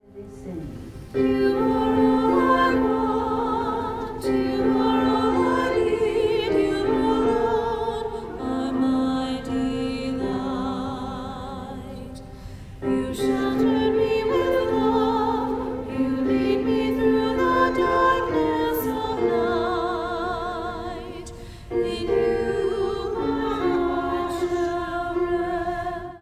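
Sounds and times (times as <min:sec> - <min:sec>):
alto voice singing: 0:00.0 - 0:26.1.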